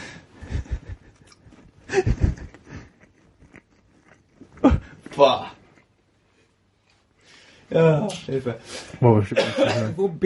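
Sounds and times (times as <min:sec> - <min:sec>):
pet chewing and eating food: 0:01.2 - 0:05.9
speech: 0:05.2 - 0:05.6, 0:07.8 - 0:10.2.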